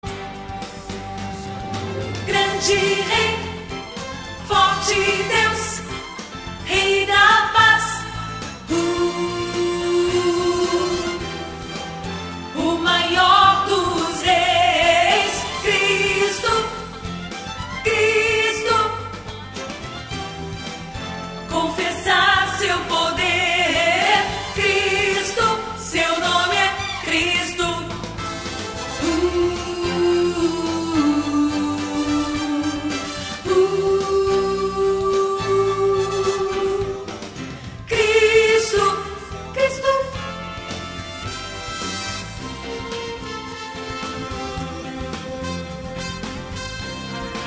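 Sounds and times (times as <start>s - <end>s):
contraltos singing a Christmas cantata: 0.1s - 19.7s, 21.4s - 47.4s.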